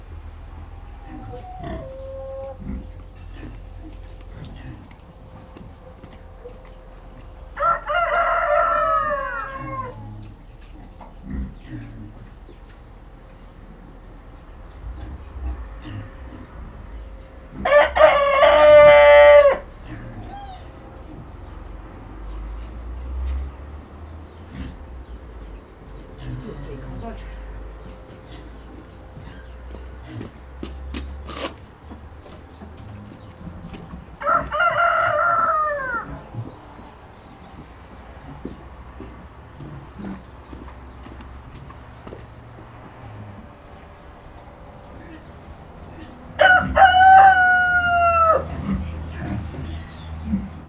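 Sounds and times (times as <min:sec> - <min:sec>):
hen clucking in a farmyard: 0:00.0 - 0:50.6
road traffic: 0:00.0 - 0:50.6
pig grunting in a farmyard: 0:00.1 - 0:05.5, 0:09.1 - 0:12.5, 0:14.7 - 0:21.6, 0:24.2 - 0:30.6, 0:35.4 - 0:40.6, 0:43.0 - 0:47.2, 0:48.1 - 0:50.6
rooster crowing in a farmyard: 0:00.6 - 0:02.9, 0:07.4 - 0:10.2, 0:17.5 - 0:21.0, 0:34.1 - 0:36.5, 0:46.2 - 0:48.8.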